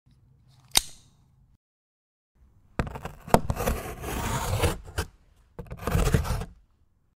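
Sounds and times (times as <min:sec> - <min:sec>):
cardboard being cut: 0:02.8 - 0:06.6.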